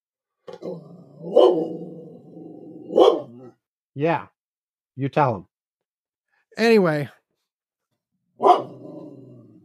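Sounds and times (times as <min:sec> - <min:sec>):
speech: 0:00.5 - 0:01.9, 0:04.0 - 0:04.3, 0:05.0 - 0:05.5, 0:06.6 - 0:07.2
dog growling: 0:00.5 - 0:03.6, 0:08.6 - 0:09.6
dog barking: 0:01.2 - 0:01.8, 0:02.8 - 0:03.6, 0:08.4 - 0:09.0.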